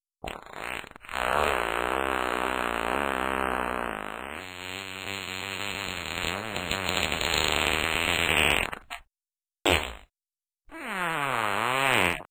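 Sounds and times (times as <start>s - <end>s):
fart: 0.2s - 9.1s, 9.7s - 10.1s, 10.7s - 12.2s.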